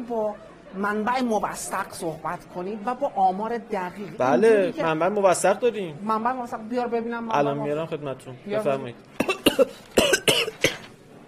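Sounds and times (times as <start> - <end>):
speech: 0.0 - 10.7
coughing: 9.2 - 10.9.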